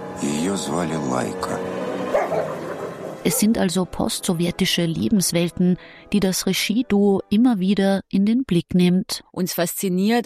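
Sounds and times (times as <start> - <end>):
speech: 0.4 - 10.2
stray dogs on the outskirts of Moscow barking and yelping: 2.0 - 3.5.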